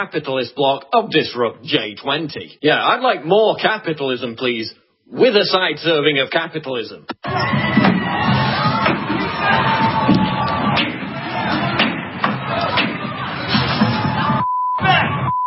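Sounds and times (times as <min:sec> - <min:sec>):
speech: 0:00.0 - 0:07.8
outdoor protest crowd shouting and murmuring: 0:07.2 - 0:15.3
steady electronic beep: 0:14.4 - 0:15.4.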